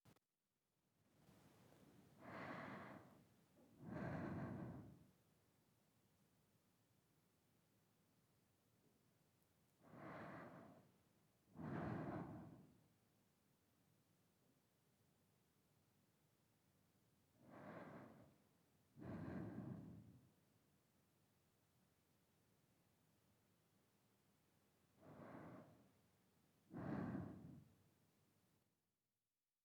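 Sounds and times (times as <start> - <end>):
slow breathing: 2.2 - 5.2, 9.8 - 12.9, 17.4 - 20.5, 24.9 - 26.0, 26.6 - 27.9.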